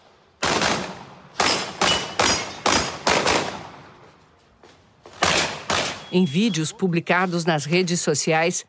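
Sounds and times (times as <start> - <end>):
sport shooter firing pistol shots at targets: 0.4 - 3.8, 5.2 - 6.1
speech: 6.1 - 8.6.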